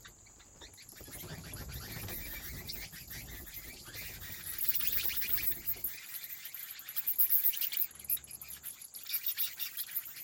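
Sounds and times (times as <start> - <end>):
constant high hiss: 0.0 - 10.2
bats flapping their wings inside a cave: 1.0 - 6.2.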